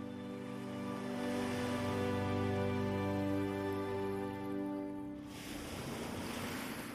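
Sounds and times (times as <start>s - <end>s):
ocean surf breaking on the shore: 0.0s - 6.9s.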